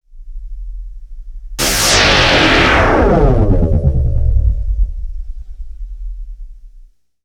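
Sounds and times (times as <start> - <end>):
sci-fi synth zap: 1.6 - 6.1.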